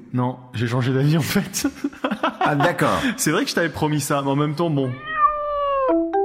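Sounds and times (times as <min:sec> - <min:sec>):
speech: 0:00.1 - 0:05.1
laughter: 0:01.5 - 0:03.2
high-pitched kittens meowing: 0:04.9 - 0:06.1.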